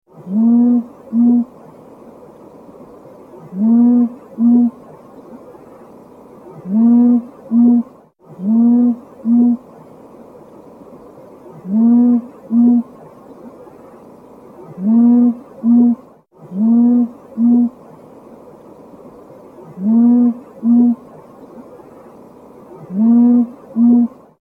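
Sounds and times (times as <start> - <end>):
Rufous owl calling: 0.2 - 1.6, 3.4 - 4.8, 6.5 - 9.7, 11.6 - 12.9, 14.7 - 17.8, 19.6 - 21.2, 22.7 - 24.2.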